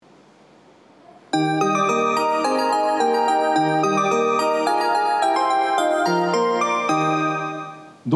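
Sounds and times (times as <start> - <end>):
melody: 1.4 - 8.0.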